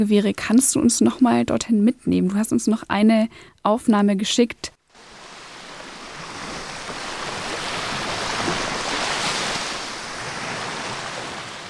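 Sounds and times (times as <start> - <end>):
speech: 0.0 - 5.2
Black Sea surf washing in in the Odessa region: 4.9 - 11.6
wind: 4.9 - 11.6.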